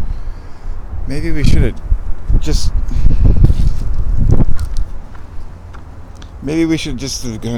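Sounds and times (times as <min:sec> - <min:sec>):
gusty wind blowing outdoors by a creek buffeting the microphone: 0:00.0 - 0:07.5
speech: 0:01.1 - 0:03.0, 0:06.4 - 0:07.5.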